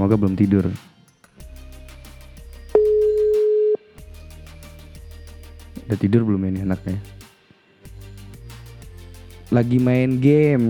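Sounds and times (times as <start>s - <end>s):
speech: 0.0s - 1.0s, 5.9s - 7.2s, 9.5s - 10.6s
quieter music: 0.0s - 10.6s
outgoing phone call electronic ringing tone: 2.8s - 3.8s.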